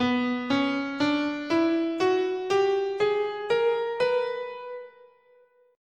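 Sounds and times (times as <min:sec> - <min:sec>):
B bebop melodic minor scale: 0:00.0 - 0:05.2.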